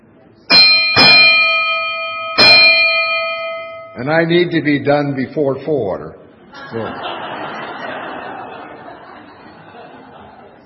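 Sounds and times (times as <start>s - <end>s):
ship's bell ringing: 0.5s - 5.2s
speech: 4.0s - 7.2s
laughter: 6.5s - 10.6s.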